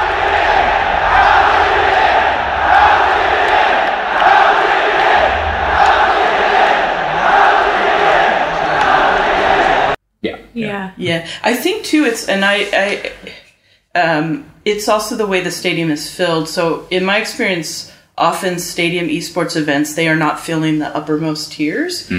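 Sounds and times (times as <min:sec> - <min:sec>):
huge indoor esports stadium crowd yelling and roaring: 0:00.0 - 0:10.0
speech: 0:10.9 - 0:13.4, 0:14.0 - 0:22.1.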